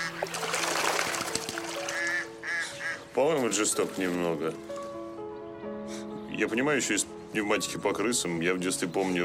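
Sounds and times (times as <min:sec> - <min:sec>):
ducks quacking on a pond: 0:00.0 - 0:00.5, 0:01.7 - 0:03.1
faint water splash on a pond: 0:00.0 - 0:02.1
speech: 0:03.2 - 0:04.7, 0:06.4 - 0:09.2.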